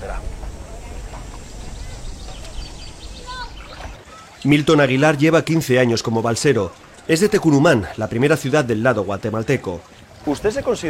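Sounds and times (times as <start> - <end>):
water splashing as a raft crosses a river: 0.0 - 10.8
bird chirp: 0.4 - 4.0
speech: 4.4 - 10.8.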